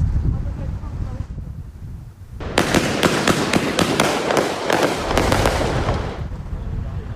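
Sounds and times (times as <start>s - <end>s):
low windy rumble: 0.0s - 7.1s
fireworks exploding: 2.4s - 6.4s.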